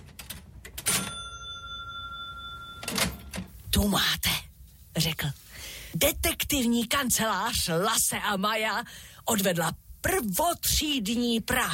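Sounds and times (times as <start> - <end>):
cash register clattering open: 0.8 - 3.5
speech: 3.8 - 11.7.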